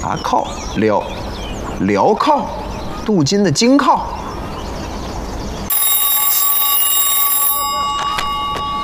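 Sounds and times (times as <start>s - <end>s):
speech: 0.0s - 4.2s
telephone ringing with a harsh bright bell tone: 5.7s - 8.8s.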